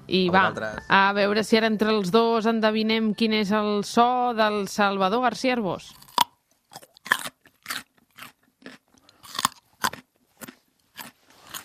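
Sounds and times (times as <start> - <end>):
speech: 0.1 - 6.0
fresh juicy raw carrot being chewed: 5.9 - 11.6.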